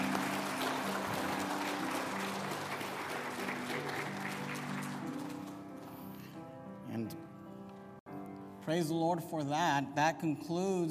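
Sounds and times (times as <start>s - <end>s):
large audience applauding for graduates: 0.0s - 6.0s
speech: 8.7s - 10.8s.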